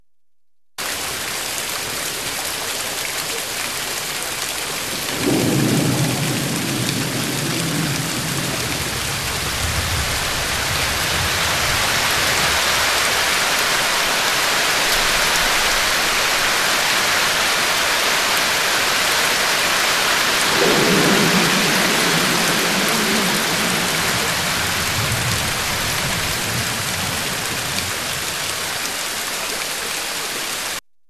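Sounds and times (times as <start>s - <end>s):
rain: 0.8s - 30.8s
thunder: 4.9s - 13.0s, 20.3s - 28.4s.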